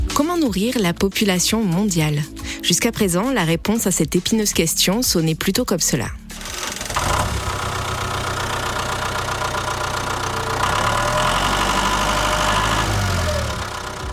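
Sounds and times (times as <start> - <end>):
speech: 0.1 - 6.2
mechanical rattle: 6.3 - 11.4
tractor engine plowing a field: 6.3 - 14.1.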